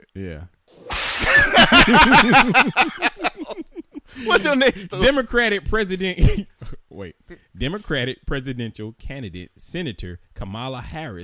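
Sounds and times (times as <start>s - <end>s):
speech: 0.2s - 0.6s, 1.2s - 11.2s
sharp whip crack sound effect: 0.8s - 1.6s
laughter: 1.1s - 5.2s.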